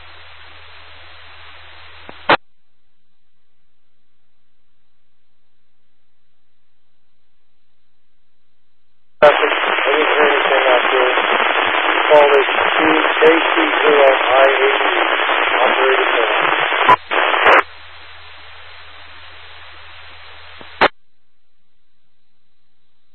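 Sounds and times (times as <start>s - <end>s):
radio static hiss: 0.0s - 2.4s, 9.2s - 20.9s
garbled voice from a weak station through a radio repeater: 9.2s - 17.6s.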